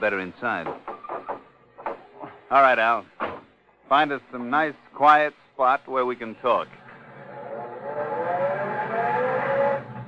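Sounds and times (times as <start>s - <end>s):
speech: 0.0s - 0.8s, 2.5s - 3.2s, 3.9s - 6.8s
car engine with manual transmission revving and pulling away: 6.8s - 10.0s.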